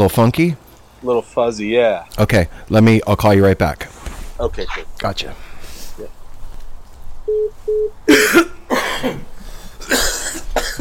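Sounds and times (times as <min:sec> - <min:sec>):
speech: 0:00.0 - 0:06.2, 0:07.3 - 0:09.2
low hum: 0:00.0 - 0:10.7
short electronic beeps: 0:07.3 - 0:08.0
people coughing: 0:08.0 - 0:10.7.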